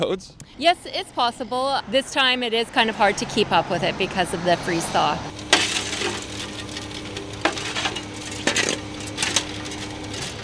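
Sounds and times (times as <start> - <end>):
speech: 0.0 - 5.4
shovels scraping and scooping asphalt into a pothole on a main road: 4.7 - 10.4.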